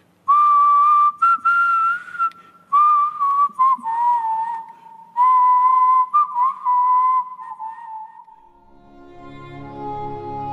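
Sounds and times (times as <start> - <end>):
person whistling a melody from deep within a prison: 0.3 - 8.5.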